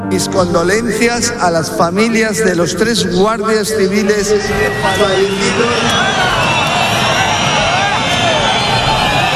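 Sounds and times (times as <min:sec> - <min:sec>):
speech: 0:00.2 - 0:06.6
large crowd booing and jeering: 0:04.0 - 0:09.3.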